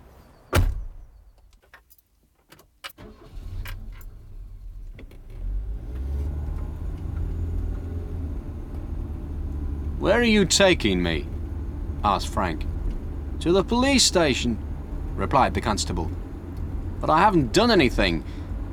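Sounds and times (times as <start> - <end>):
car door slamming: 0.5 - 1.1
car engine starting and rumbling: 2.9 - 18.7
speech: 10.0 - 11.3, 12.0 - 12.7, 13.4 - 14.6, 15.2 - 16.2, 17.0 - 18.4.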